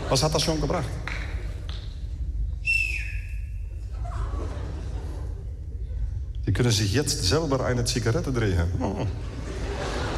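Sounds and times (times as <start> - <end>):
laughter: 0.0 - 1.0, 3.9 - 6.3, 8.8 - 10.1
low rumbling background: 0.0 - 10.1
speech: 0.1 - 1.2, 6.6 - 9.4
person whistling: 2.6 - 3.6.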